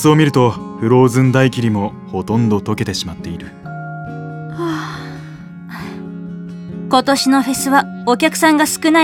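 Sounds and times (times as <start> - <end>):
speech: 0.0 - 3.6, 6.9 - 9.0
big breathy yawn: 4.6 - 6.0.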